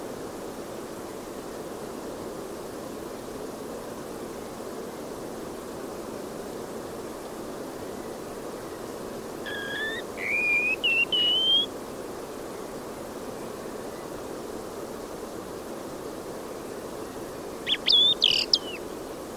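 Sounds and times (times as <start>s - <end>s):
steady background hiss: 0.0s - 19.3s
bird calling with thin whistled notes: 9.5s - 11.7s, 17.6s - 18.9s.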